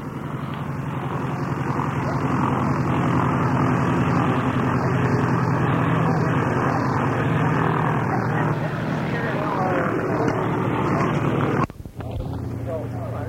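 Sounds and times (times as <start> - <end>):
Cessna 195 propeller airplane piston engine taxiing: 0.0 - 13.2.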